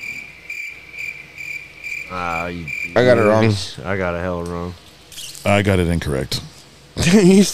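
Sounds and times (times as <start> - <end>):
crickets chirping in a continuous high trill: 0.0 - 4.2
speech: 2.1 - 4.8, 5.4 - 7.5.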